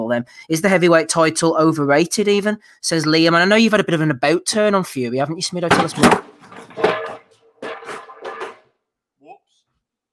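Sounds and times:
speech: 0:00.1 - 0:06.9
frying pan clattering and banging: 0:05.7 - 0:08.7.

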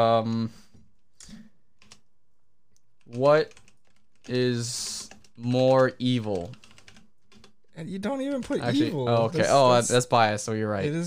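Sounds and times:
speech: 0:00.0 - 0:00.6, 0:03.1 - 0:03.6, 0:04.2 - 0:06.6, 0:07.8 - 0:11.0
soft keystroke clicks from a computer keyboard: 0:01.8 - 0:02.1, 0:03.0 - 0:07.6.

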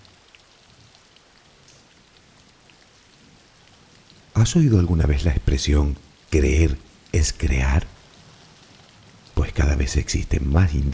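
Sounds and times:
steady rain falling: 0:00.0 - 0:10.9
speech: 0:04.4 - 0:07.9, 0:09.6 - 0:10.9.

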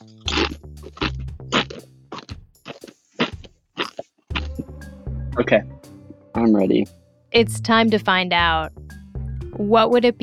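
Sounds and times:
crunching of a tortilla chip: 0:00.0 - 0:04.6
low throaty mouth sounds: 0:00.0 - 0:05.0
speech: 0:05.4 - 0:05.7, 0:06.4 - 0:08.8, 0:09.6 - 0:10.2.

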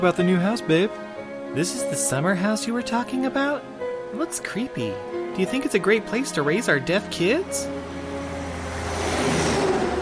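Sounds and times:
speech: 0:00.0 - 0:07.8
truck driving past: 0:06.5 - 0:10.0.

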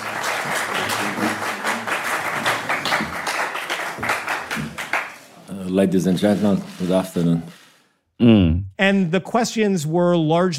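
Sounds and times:
journalists applauding at a press conference: 0:00.0 - 0:05.6
speech: 0:00.4 - 0:01.4, 0:05.7 - 0:07.6, 0:08.2 - 0:10.5.

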